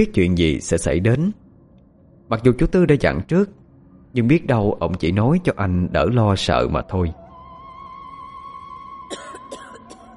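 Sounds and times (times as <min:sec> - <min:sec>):
speech: 0:00.0 - 0:01.4, 0:02.3 - 0:07.2
steady droning tone: 0:00.0 - 0:10.1
sudden violent hoarse coughing fit: 0:09.1 - 0:10.1.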